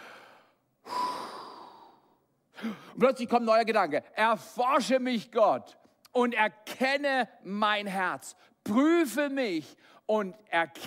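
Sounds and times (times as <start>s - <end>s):
slow deep breath close to the microphone: 0.0s - 2.9s
speech: 2.6s - 10.8s.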